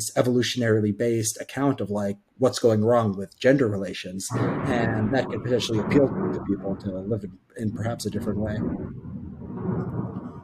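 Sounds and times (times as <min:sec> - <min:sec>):
speech: 0:00.0 - 0:10.0
deep rolling rumble of thunder from a massive thunderstorm on the equator in Ecuador: 0:04.3 - 0:10.4.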